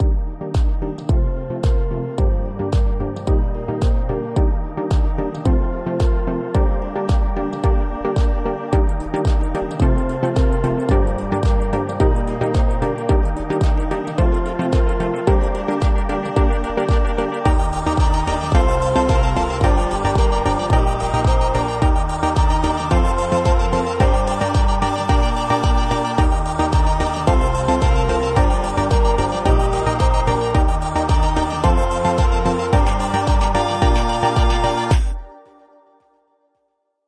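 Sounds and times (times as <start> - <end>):
four on the floor percussion: 0.0 - 35.2.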